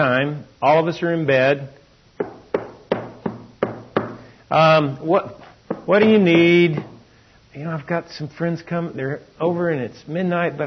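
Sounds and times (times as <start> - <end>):
speech: 0.2 - 1.8, 4.5 - 6.9, 7.6 - 10.6
knocking on a neighbor's door: 2.2 - 4.3, 5.7 - 7.0.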